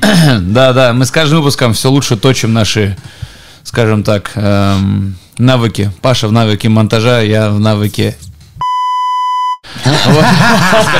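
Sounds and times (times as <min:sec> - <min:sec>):
speech: 0:00.1 - 0:08.3, 0:09.6 - 0:10.9
censorship bleep pure tone: 0:08.6 - 0:09.6
laughter: 0:09.7 - 0:10.9.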